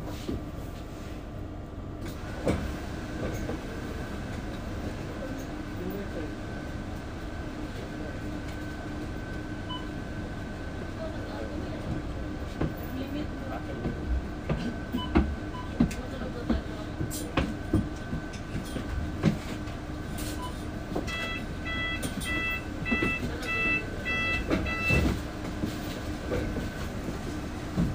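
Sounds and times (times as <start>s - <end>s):
bus engine rumble with a constant whine: 0.0s - 27.9s
repeated beeping chime: 21.1s - 25.0s.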